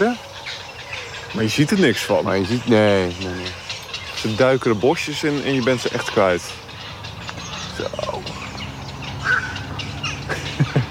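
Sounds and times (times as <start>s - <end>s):
black-crowned night herons calling at breeding colony: 0.0s - 10.8s
speech: 1.3s - 3.6s, 4.2s - 6.6s
laughter: 9.2s - 10.8s.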